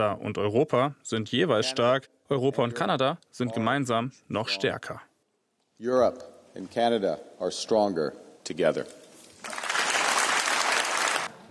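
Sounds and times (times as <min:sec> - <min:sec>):
speech: 0:00.0 - 0:05.1, 0:05.8 - 0:09.6
applause in the European Parliament in Strasbourg after a speech: 0:09.4 - 0:11.5.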